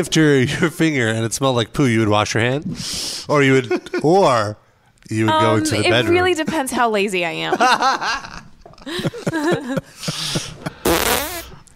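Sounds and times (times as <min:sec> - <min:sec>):
speech: 0:00.0 - 0:10.8
laughter: 0:07.5 - 0:10.8
farts: 0:10.8 - 0:11.6.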